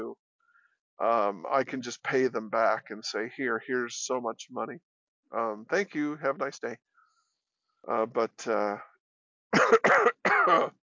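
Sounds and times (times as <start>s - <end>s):
speech: 1.0s - 6.9s, 7.8s - 8.9s, 9.6s - 10.8s
person coughing: 9.6s - 10.8s.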